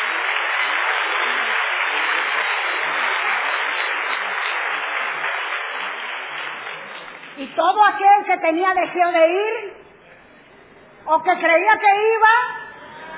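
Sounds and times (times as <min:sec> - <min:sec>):
audience applauding: 0:00.0 - 0:07.6
speech: 0:07.6 - 0:09.8, 0:11.1 - 0:12.6.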